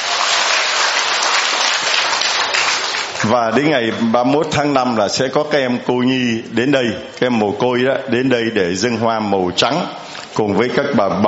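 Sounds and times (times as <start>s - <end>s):
children's applause: 0.0s - 4.1s
speech: 3.2s - 11.2s.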